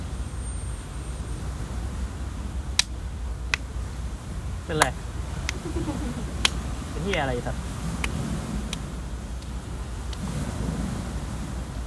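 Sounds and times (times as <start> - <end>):
sea breeze on the beach: 0.0 - 11.8
surf on the beach: 0.0 - 11.8
speech: 4.7 - 6.4, 7.0 - 7.7
laughter: 5.5 - 6.5.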